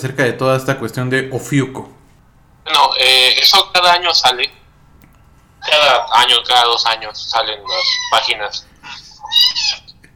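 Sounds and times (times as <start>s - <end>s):
speech: 0.0s - 2.0s, 2.7s - 4.6s, 5.6s - 8.7s
cat meowing: 7.0s - 10.0s.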